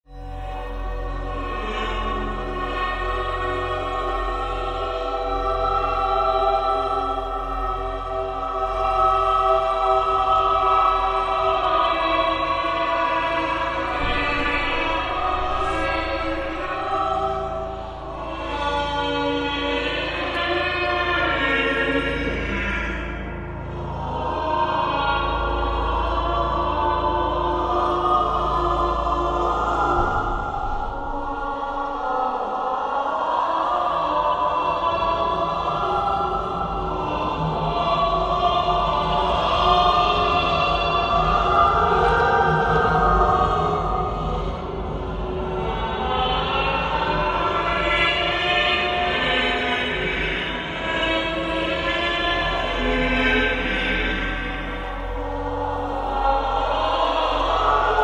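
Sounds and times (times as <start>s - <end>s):
creepy ghost choir singing: 0.1s - 58.0s.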